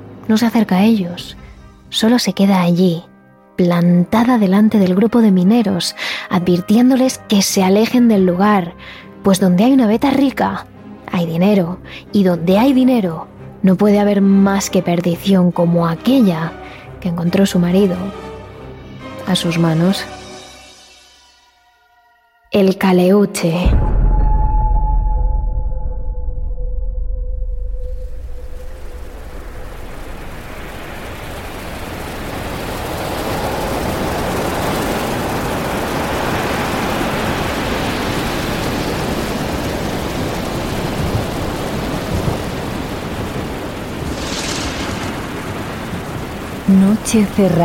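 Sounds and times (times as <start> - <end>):
speech: 0.3 - 18.3, 19.3 - 20.2, 22.6 - 23.9, 47.0 - 47.6
low rumble: 23.6 - 47.6
rough sea waves crashing in a storm: 27.9 - 47.6.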